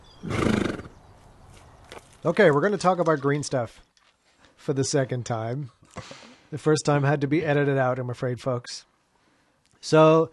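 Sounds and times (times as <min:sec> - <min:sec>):
horse neighing: 0:00.2 - 0:01.0
speech: 0:02.2 - 0:03.9, 0:04.7 - 0:08.9, 0:09.8 - 0:10.3.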